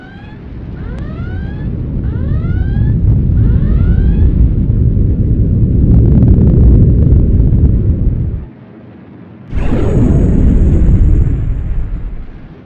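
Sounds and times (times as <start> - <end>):
deep roar of impact and rumbling blasts on a ship: 0.4 - 8.5, 9.5 - 12.6
heavy laser cannon firing: 9.5 - 12.6
loud explosive surge with a thin whine: 9.5 - 12.6.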